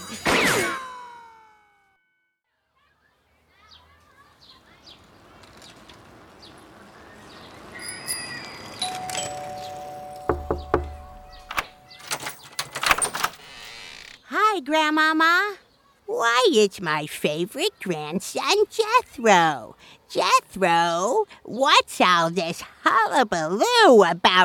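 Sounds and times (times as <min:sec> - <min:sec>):
loud bright school bell ringing: 0:07.8 - 0:12.4
thumps and clatter: 0:10.3 - 0:13.4
speech: 0:14.6 - 0:24.4.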